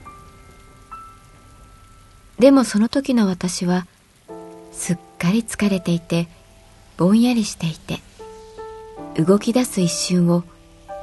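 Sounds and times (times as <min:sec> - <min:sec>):
steady rain pattering on a hard surface: 0:00.0 - 0:11.0
speech: 0:02.4 - 0:03.9, 0:04.8 - 0:06.4, 0:07.0 - 0:08.1, 0:09.2 - 0:10.5.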